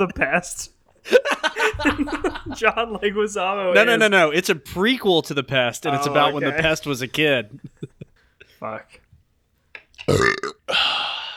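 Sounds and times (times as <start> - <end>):
speech: 0.0 - 7.8, 8.6 - 9.0, 10.1 - 11.0
laughter: 1.0 - 4.2, 5.9 - 8.4
loud burp: 10.0 - 10.8.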